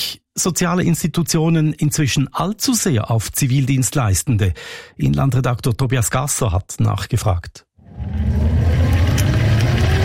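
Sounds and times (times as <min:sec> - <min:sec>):
speech: 0:00.4 - 0:08.4
new speed-limited five-gear electric wheelchair motor whirring: 0:08.0 - 0:10.0.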